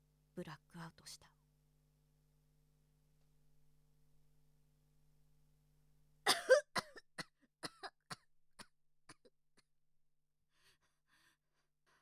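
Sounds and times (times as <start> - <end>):
speech: 0.4 - 1.4
prolonged coughing fit: 6.3 - 8.2.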